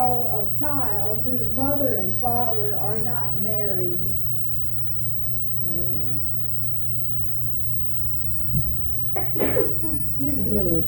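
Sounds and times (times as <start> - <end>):
steady low electrical hum: 0.0 - 10.8
speech: 0.7 - 4.2, 9.2 - 10.8
sneeze: 9.2 - 10.0.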